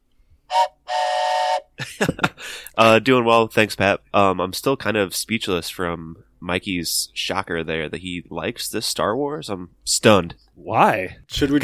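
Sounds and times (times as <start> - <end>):
loud train whistle blasts: 0.5 - 1.7
speech: 2.0 - 11.6.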